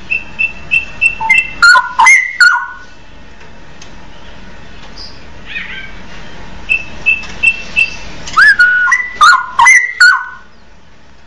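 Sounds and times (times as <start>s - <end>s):
Oriental magpie-robin whistled song: 0.1s - 2.9s, 6.7s - 10.9s.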